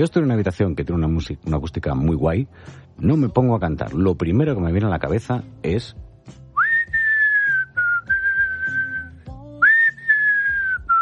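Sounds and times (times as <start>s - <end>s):
speech: 0.0s - 6.4s
person whistling a slow song melody in a resonant room: 6.5s - 11.0s.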